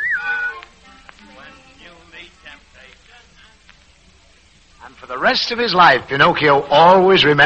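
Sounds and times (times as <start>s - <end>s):
person whistling: 0.0s - 0.7s
soft music: 0.0s - 3.7s
speech: 4.8s - 7.4s.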